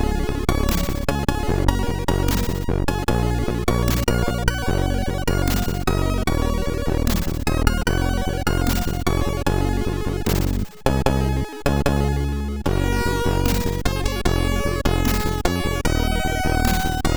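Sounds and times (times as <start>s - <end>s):
chiptune music from a MOS6581R4 SID sound chip: 0.1s - 17.1s.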